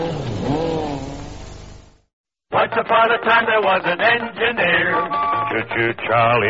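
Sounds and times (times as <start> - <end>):
Skoda Super Estel car engine revving: 0.0 - 2.0
speech: 2.9 - 6.4.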